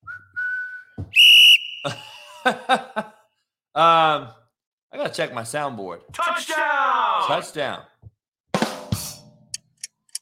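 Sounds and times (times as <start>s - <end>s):
sharp piercing whistle blast: 0.1s - 2.1s
speech: 1.8s - 3.1s, 3.8s - 4.4s, 5.0s - 7.9s
burst of laughter: 1.8s - 3.3s.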